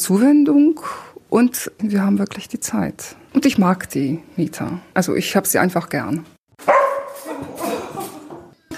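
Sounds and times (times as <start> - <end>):
speech: 0.0 - 6.7
dog barking and yipping: 6.6 - 8.1.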